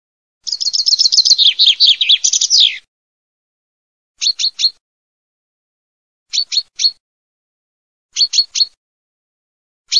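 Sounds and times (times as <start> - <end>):
common chaffinch song: 0.4 - 2.9, 4.2 - 4.8, 6.3 - 7.0, 8.1 - 8.8.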